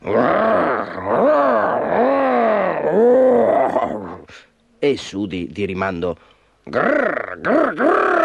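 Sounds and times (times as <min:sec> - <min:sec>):
human voice imitating a tiger roaring: 0:00.0 - 0:04.3, 0:06.7 - 0:08.2
speech: 0:00.1 - 0:01.1, 0:05.0 - 0:08.2.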